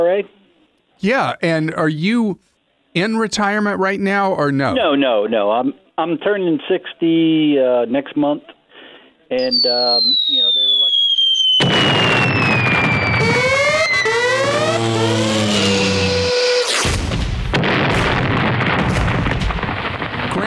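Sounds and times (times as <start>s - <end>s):
speech: 0.0s - 0.4s, 1.0s - 8.6s, 9.3s - 10.6s
bomb whistles falling in pitch: 9.4s - 16.8s
heavy bomb burst: 11.6s - 20.4s.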